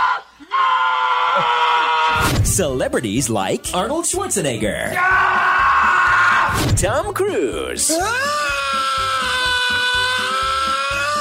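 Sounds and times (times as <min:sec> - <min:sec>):
person screaming high-pitched while auditioning for a horror movie: 0:00.0 - 0:02.2, 0:05.0 - 0:06.6, 0:07.9 - 0:11.1
speech: 0:02.6 - 0:05.5, 0:06.6 - 0:10.4.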